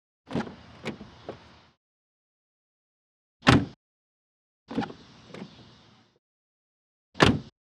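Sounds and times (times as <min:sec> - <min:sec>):
car door shutting: 0:00.3 - 0:01.5, 0:03.5 - 0:03.8, 0:07.2 - 0:07.5.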